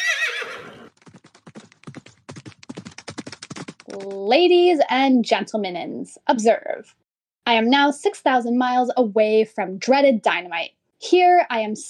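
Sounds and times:
horse neighing: 0.0s - 0.9s
horse hooves clip-clopping into a gallop: 0.1s - 4.4s
speech: 3.9s - 11.8s.

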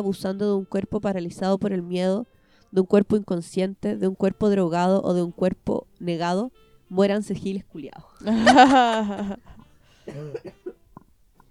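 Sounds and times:
speech: 0.0s - 9.5s, 10.1s - 10.7s
laughter: 8.2s - 9.6s
person coughing harshly and clearing throat: 8.3s - 10.8s.

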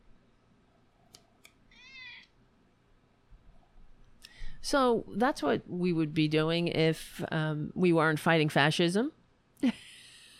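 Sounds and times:
cat meowing: 1.7s - 2.3s
speech: 4.6s - 9.8s.

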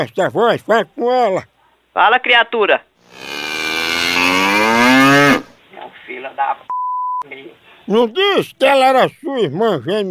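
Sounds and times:
speech: 0.0s - 3.3s, 4.2s - 10.1s
cow mooing: 3.1s - 5.5s.

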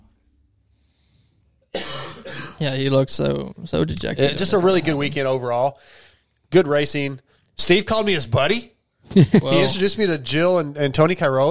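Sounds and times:
low noise: 0.0s - 11.4s
sharp cough: 1.8s - 2.6s
speech: 2.2s - 11.4s.

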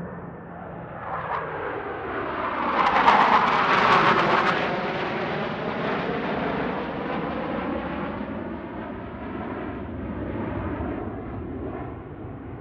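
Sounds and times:
F/A-18 Hornet jet passing overhead: 0.0s - 12.5s.

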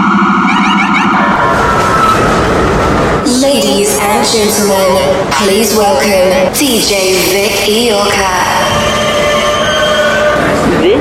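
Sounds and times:
Queens-bound E subway train running on rails: 0.0s - 11.0s
rising screech of subway train: 1.1s - 3.0s, 8.1s - 11.0s
speech: 4.3s - 8.8s
subway train metallic wheel squeal: 8.3s - 11.0s.

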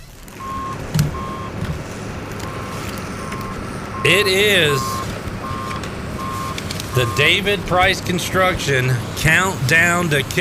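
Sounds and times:
low truck engine rumble: 0.0s - 10.4s
truck reversing alarm beeps: 0.4s - 1.5s, 2.4s - 7.4s
speech: 4.0s - 5.0s, 7.0s - 10.4s.

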